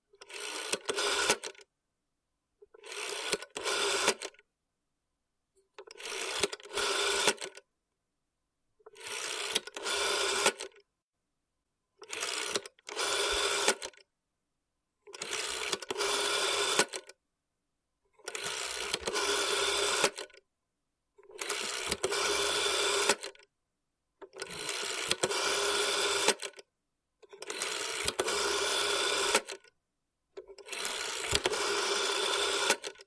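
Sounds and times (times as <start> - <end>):
rotary telephone dialing a number: 0.2 - 1.6, 2.8 - 4.4, 5.8 - 7.6, 8.9 - 10.8, 12.0 - 14.0, 15.1 - 17.2, 18.2 - 20.4, 21.2 - 23.4, 24.2 - 26.6, 27.3 - 29.7, 30.4 - 33.0.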